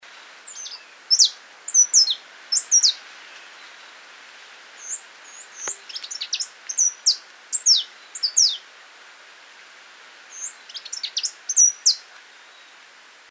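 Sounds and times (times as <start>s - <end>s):
canary flyrobin calling: 0.4s - 4.0s, 4.8s - 8.7s, 10.3s - 12.8s.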